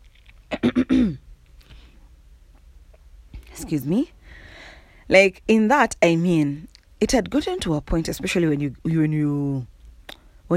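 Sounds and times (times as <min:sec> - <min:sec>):
throat clearing: 0:00.5 - 0:01.2
speech: 0:00.7 - 0:01.2, 0:03.7 - 0:04.2, 0:05.1 - 0:09.7.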